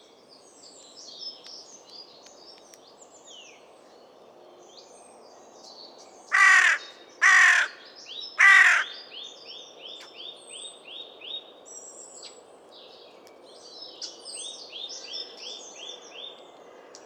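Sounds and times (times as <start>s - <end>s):
carrion crow Corvus corone giving coarse caws: 6.3s - 7.8s, 8.4s - 9.0s.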